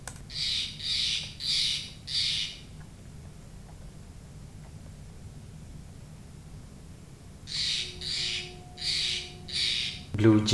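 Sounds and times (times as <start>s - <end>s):
Steller's Jay harsh rasping calls: 0.3s - 2.6s, 7.5s - 10.2s
speech: 10.2s - 10.5s.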